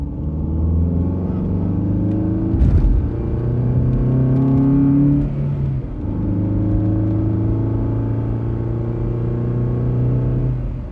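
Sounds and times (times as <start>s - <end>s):
car engine hum accelerating through gears heard from inside the car: 0.0s - 10.9s
car hitting a bump: 2.5s - 3.5s.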